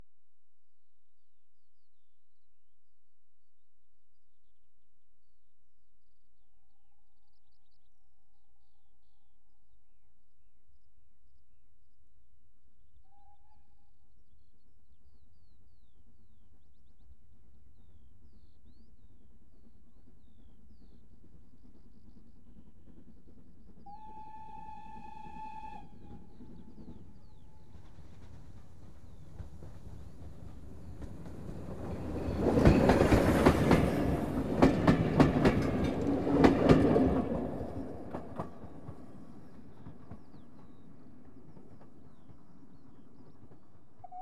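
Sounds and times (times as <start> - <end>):
train coasting at medium speed: 20.2 - 44.1.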